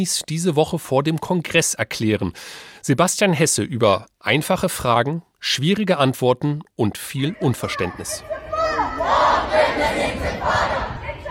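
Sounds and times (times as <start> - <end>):
speech: 0.0 - 8.4
large protest crowd chanting slogans in unison outdoors: 7.6 - 11.2.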